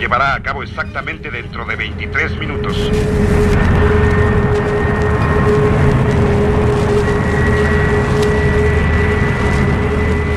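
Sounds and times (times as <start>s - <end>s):
speech: 0.0s - 4.4s, 5.5s - 6.3s
fighter jet engine roaring while climbing at high speed: 0.0s - 10.3s.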